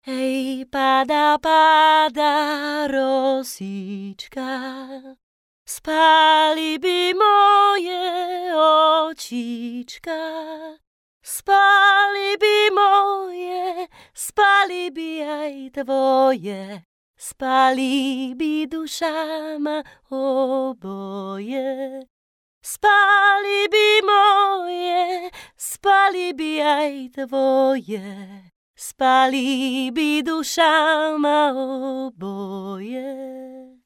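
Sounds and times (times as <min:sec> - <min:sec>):
Czech woman singing: 0:00.0 - 0:33.8.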